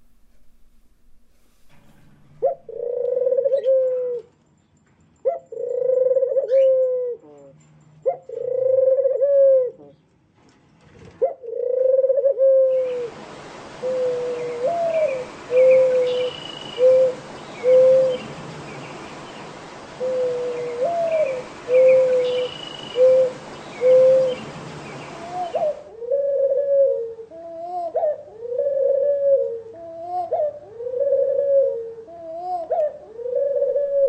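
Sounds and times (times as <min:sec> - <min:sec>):
breathy hiss: 0:00.0 - 0:04.1, 0:11.8 - 0:34.0
doves cooing: 0:02.3 - 0:04.3, 0:05.3 - 0:07.5, 0:08.1 - 0:09.9, 0:11.1 - 0:34.0.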